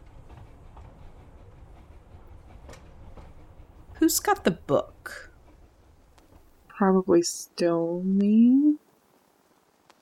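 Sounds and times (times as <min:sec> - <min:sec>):
faint clacks: 0:00.0 - 0:06.8
train rolling on rails: 0:00.0 - 0:08.2
speech: 0:04.0 - 0:05.3, 0:06.8 - 0:08.8.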